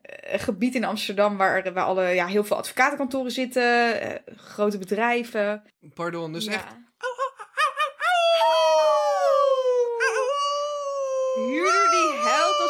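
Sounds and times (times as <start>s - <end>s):
speech: 0.3s - 6.8s
human voice imitating a wolf howl with yips: 8.0s - 12.6s.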